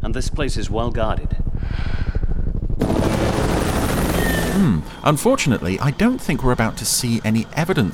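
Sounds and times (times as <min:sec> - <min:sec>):
attack helicopters flying overhead: 0:00.0 - 0:07.9
speech: 0:00.2 - 0:02.2, 0:04.6 - 0:07.9.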